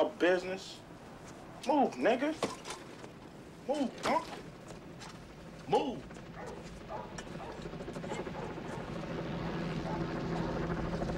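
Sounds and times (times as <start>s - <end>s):
helicopter flying overhead: 0.0s - 11.1s
speech: 0.1s - 0.9s, 1.6s - 2.6s, 3.7s - 4.5s, 5.7s - 7.4s.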